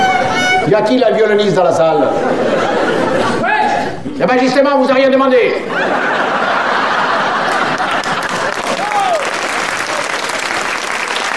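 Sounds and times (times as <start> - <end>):
speech: 0.7 - 3.5, 4.2 - 6.4
laughter: 1.9 - 4.2, 4.8 - 10.8
applause from a live audience: 6.0 - 11.3.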